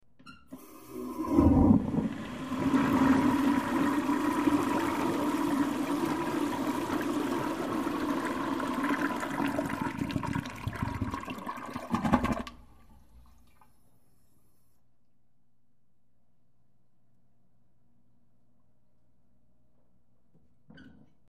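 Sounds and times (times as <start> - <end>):
older low tank household toilet flushing slowly: 0.5 - 14.2.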